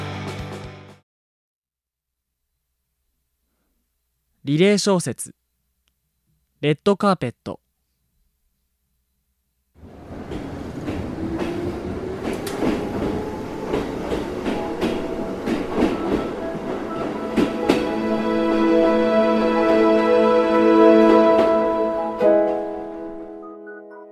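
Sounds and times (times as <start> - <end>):
speech: 4.5 - 5.4, 6.6 - 7.7
train rolling along the rails with steady rumble: 9.8 - 22.6
train wheels clacking over track joints: 10.1 - 16.4.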